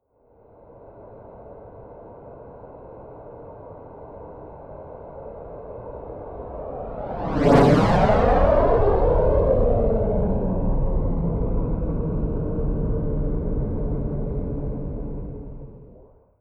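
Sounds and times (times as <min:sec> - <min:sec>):
Eurofighter Typhoon military jet fast close flyby: 0:06.4 - 0:16.1.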